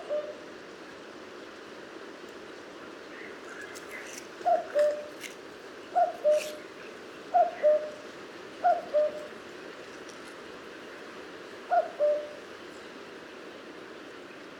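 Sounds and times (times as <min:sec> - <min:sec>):
common cuckoo calling: 0:04.4 - 0:05.1, 0:06.0 - 0:06.6, 0:07.4 - 0:08.0, 0:08.6 - 0:09.3, 0:11.7 - 0:12.4.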